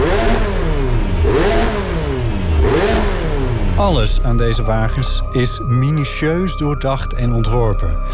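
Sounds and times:
sports car engine revving hard through its exhaust: 0:00.0 - 0:05.3
speech: 0:03.8 - 0:08.1.

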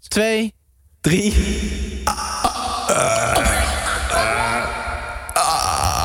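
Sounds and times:
speech: 0:00.0 - 0:01.8, 0:02.9 - 0:04.5
long loud gravelly burp: 0:02.9 - 0:06.0.

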